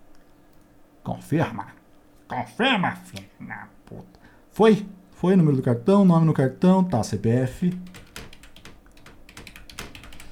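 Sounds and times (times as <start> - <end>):
speech: 1.1 - 7.9
rapid uneven typing on a computer keyboard: 7.7 - 10.3.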